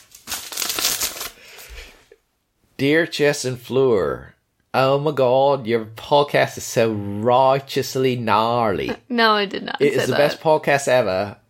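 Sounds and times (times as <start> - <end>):
sheet of paper being picked up and rustled: 0.0 - 2.0
speech: 2.8 - 11.4.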